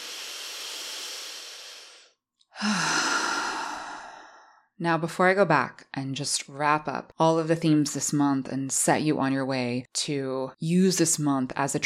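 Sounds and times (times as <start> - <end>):
big deep breath during a guided breathing exercise: 0.0 - 4.7
speech: 4.8 - 11.8.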